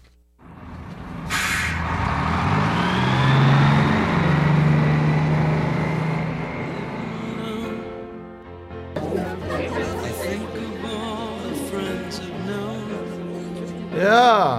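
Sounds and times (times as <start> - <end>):
bus engine idling and revving as it pulls away: 0.4 - 14.5
bus air brakes hissing: 1.3 - 2.0
laughter: 9.0 - 14.5.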